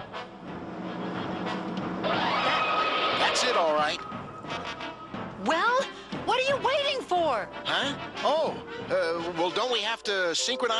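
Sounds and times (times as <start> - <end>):
truck convoy driving past: 0.0 - 6.1
speech: 3.4 - 4.1, 7.3 - 10.7.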